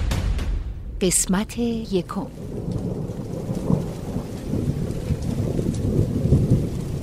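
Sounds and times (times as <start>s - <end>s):
speech: 1.0s - 2.8s
heavy rain pouring at night: 1.0s - 7.0s.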